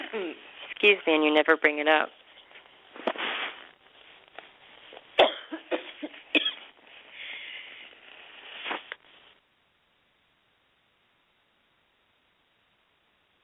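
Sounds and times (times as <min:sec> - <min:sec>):
speech: 0:00.1 - 0:02.2
person coughing in sharp hacking bursts: 0:05.2 - 0:06.6
rough throaty breaths: 0:07.0 - 0:08.0.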